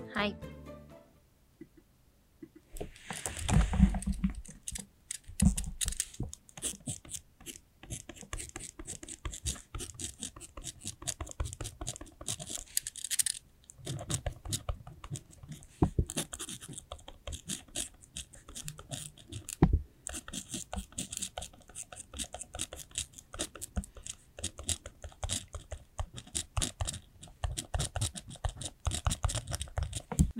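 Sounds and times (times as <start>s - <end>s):
speech: 0.2s - 0.5s
pen writing characters on paper: 2.8s - 4.8s, 5.4s - 12.8s, 13.8s - 30.3s.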